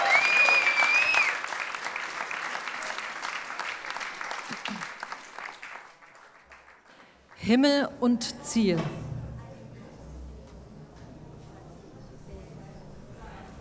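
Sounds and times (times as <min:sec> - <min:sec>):
whistle or cheer from the audience: 0:00.0 - 0:01.4
audience applause: 0:00.0 - 0:07.4
speech: 0:07.5 - 0:09.0.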